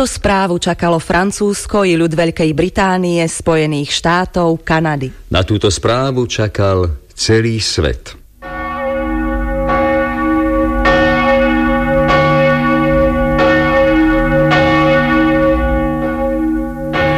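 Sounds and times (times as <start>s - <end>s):
speech: 0.0s - 8.2s
large bell ringing: 8.4s - 17.1s.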